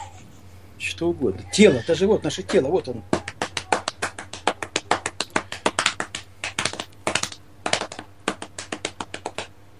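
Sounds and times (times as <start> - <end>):
speech: 1.0 - 3.2
hands patting a quick steady rhythm on a belly: 3.1 - 9.5.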